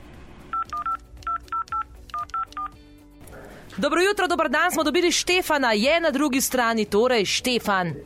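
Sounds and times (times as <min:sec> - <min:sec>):
telephone keypad tones of a number being dialed: 0:00.5 - 0:02.8
speech: 0:03.8 - 0:08.0.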